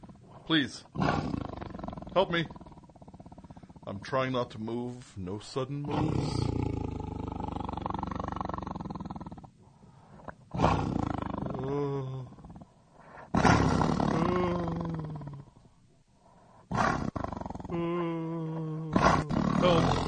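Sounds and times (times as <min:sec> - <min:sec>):
tiger roaring and growling: 0:00.0 - 0:04.2, 0:05.8 - 0:09.6, 0:10.5 - 0:12.7, 0:13.3 - 0:15.6, 0:16.7 - 0:17.8, 0:18.9 - 0:20.0
speech: 0:00.5 - 0:01.4, 0:02.2 - 0:02.6, 0:03.9 - 0:06.5.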